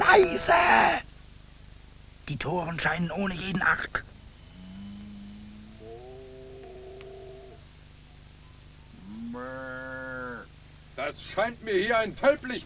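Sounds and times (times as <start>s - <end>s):
speech: 0.1s - 1.1s, 2.3s - 4.1s, 11.0s - 12.6s
cattle bellowing in a pasture at night: 4.4s - 7.7s, 8.9s - 10.5s.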